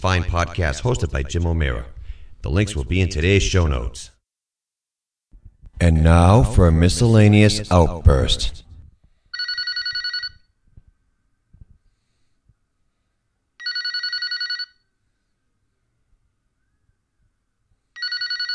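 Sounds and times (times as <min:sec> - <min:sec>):
speech: 0:00.0 - 0:04.1, 0:05.8 - 0:08.6
breathing: 0:02.0 - 0:02.4, 0:09.0 - 0:09.5, 0:11.8 - 0:13.3, 0:15.0 - 0:15.5
telephone bell ringing: 0:09.3 - 0:10.5, 0:13.6 - 0:14.9, 0:18.0 - 0:18.5.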